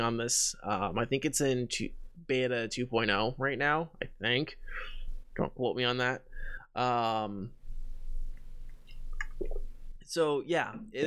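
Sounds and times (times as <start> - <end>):
speech: 0.0 - 7.6, 9.4 - 11.0
person drinking water: 8.9 - 9.7.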